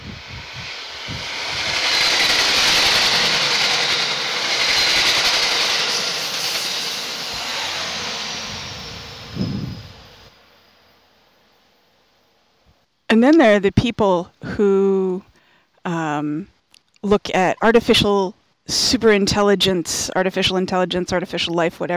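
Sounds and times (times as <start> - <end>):
train rushing past: 0.0 - 12.0
speech: 13.2 - 21.9.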